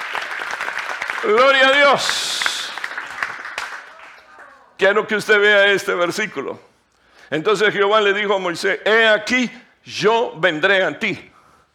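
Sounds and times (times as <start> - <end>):
audience applauding: 0.0 - 4.8
speech: 1.2 - 2.6, 4.8 - 6.7, 7.3 - 11.3.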